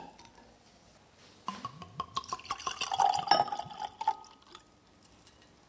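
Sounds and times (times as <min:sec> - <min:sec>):
wine bottle and glass clinking: 0:01.5 - 0:04.2
wine glugging and pouring into a glass: 0:01.5 - 0:04.7.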